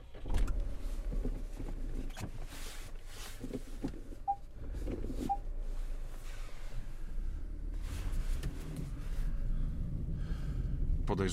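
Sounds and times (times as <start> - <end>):
car rolling slowly in reverse with engine and tyre rumble: 0.1 - 11.3
parking sensor short clear beeps: 4.2 - 4.5, 5.2 - 5.5
speech: 11.2 - 11.3.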